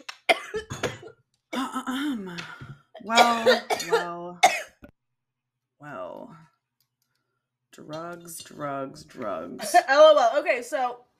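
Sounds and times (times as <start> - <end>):
harsh coughing fit: 0.3 - 1.7, 3.0 - 4.8
speech: 1.9 - 4.2, 7.9 - 11.1.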